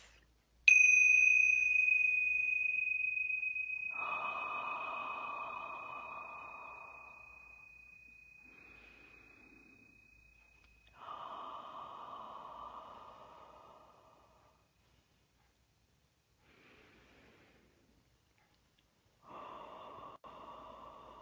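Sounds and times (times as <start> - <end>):
long clear bell tone ringing: 0.7 - 10.9
deep slow breaths during a relaxation exercise: 2.1 - 15.2, 16.4 - 18.1, 19.1 - 21.2.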